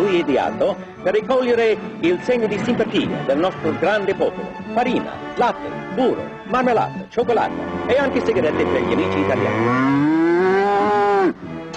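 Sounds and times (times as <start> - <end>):
speech: 0.2 - 10.6
cow mooing: 7.4 - 11.5.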